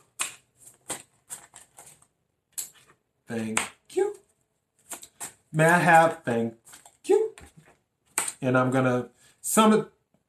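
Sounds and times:
tarot cards being shuffled: 0.1 - 3.7, 4.8 - 8.4
speech: 3.3 - 4.2, 5.5 - 7.2, 8.4 - 10.0.

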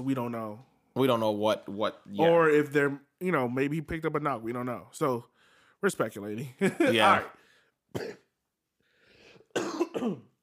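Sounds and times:
speech: 0.0 - 8.2, 9.5 - 10.3
person coughing in short harsh bursts: 7.9 - 8.3, 9.5 - 10.4
quiet breathy sound: 8.8 - 9.5.

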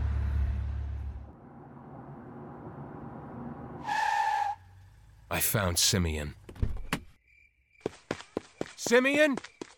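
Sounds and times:
tire screech: 0.0 - 5.0
car engine rumble: 0.0 - 5.6
road noise: 0.0 - 6.6
speech: 5.4 - 6.4, 8.9 - 9.5.

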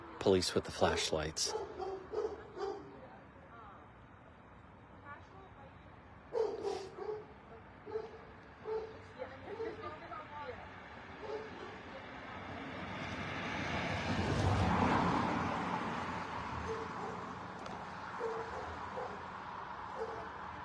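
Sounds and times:
faint noise: 0.0 - 20.6
speech: 0.2 - 1.8
dogs barking and yipping on West Main Road in Portsmouth: 1.5 - 3.0, 6.3 - 9.9, 11.2 - 11.8, 16.6 - 17.5, 18.1 - 20.5.

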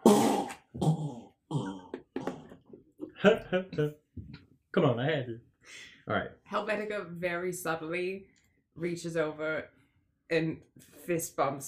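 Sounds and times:
voice imitating a fart during a tabletop role-playing game: 0.0 - 2.6
speech: 3.2 - 11.6.

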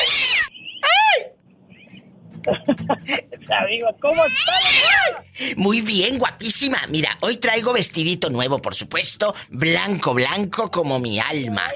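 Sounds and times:
laughter: 2.4 - 5.3
speech: 2.4 - 11.7
cat meowing and yowling: 4.2 - 5.2.

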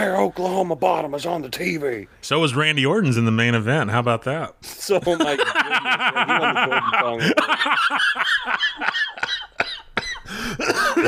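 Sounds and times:
speech: 0.0 - 9.4, 10.4 - 11.0
laughter: 5.0 - 11.0
person coughing harshly: 9.6 - 11.0.

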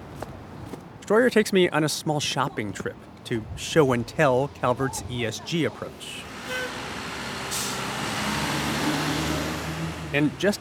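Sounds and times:
speech: 1.1 - 6.6, 10.1 - 10.6
city bus engine rumble pulling away from stop: 2.1 - 10.6
city bus air brakes releasing: 7.4 - 8.0.

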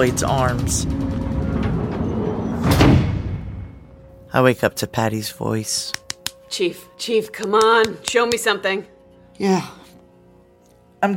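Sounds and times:
speech: 0.0 - 1.1, 4.3 - 9.8
heavy engine room door sliding shut: 0.9 - 3.8.

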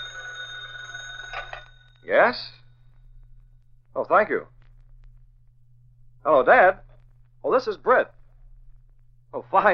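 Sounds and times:
office telephone bell ringing: 0.0 - 2.1
low electrical hum: 0.0 - 9.7
speech: 2.1 - 2.6, 4.0 - 4.6, 6.2 - 6.8, 7.4 - 8.2, 9.3 - 9.7.

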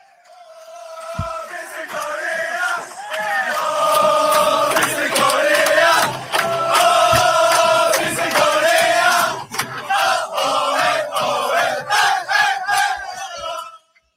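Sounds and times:
football fans chanting in a stadium: 0.0 - 14.0
sharp claps or drum hits: 1.1 - 2.4, 3.1 - 10.1.

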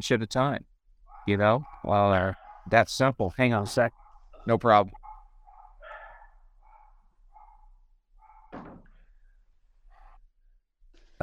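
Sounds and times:
speech: 0.0 - 5.0
several dogs barking and yipping excitedly at feeding time: 1.0 - 9.0
sharp thump or door slam: 8.4 - 9.0.

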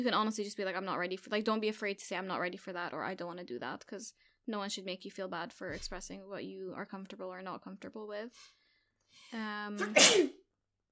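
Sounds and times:
speech: 0.0 - 10.4
loud sneeze: 9.8 - 10.4.

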